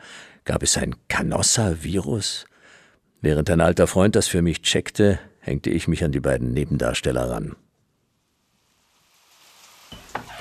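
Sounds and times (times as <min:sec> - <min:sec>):
speech: 0:00.5 - 0:02.5, 0:03.2 - 0:07.7
rain falling: 0:08.4 - 0:10.4.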